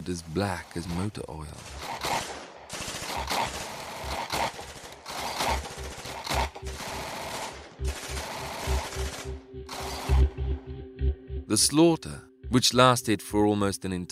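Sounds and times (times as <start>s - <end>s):
speech: 0.0s - 2.1s, 11.6s - 14.1s
machine gun fire in a stone-walled garage: 1.6s - 10.2s.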